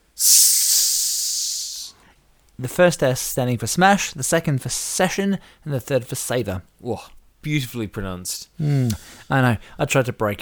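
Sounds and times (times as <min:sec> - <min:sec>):
person hissing like a snake: 0:00.0 - 0:02.0
speech: 0:02.6 - 0:10.4.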